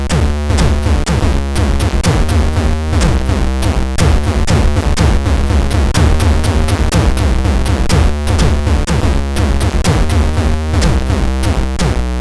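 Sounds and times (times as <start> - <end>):
chiptune music on a MOS6581R4 chip: 0.1 - 12.0.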